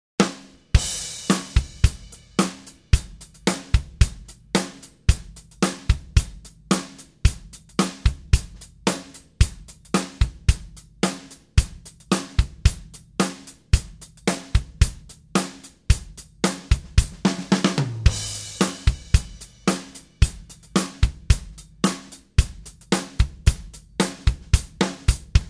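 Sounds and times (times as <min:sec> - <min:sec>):
drums: 0:00.2 - 0:25.4.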